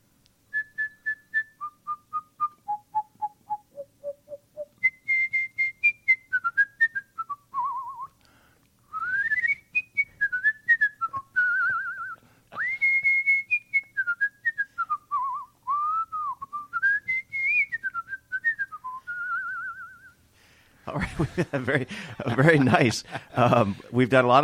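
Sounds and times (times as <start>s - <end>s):
person in a studio whistling a cheerful Christmas tune: 0.5s - 8.2s, 8.9s - 20.2s
laughter: 20.9s - 24.0s
speech: 20.9s - 24.4s.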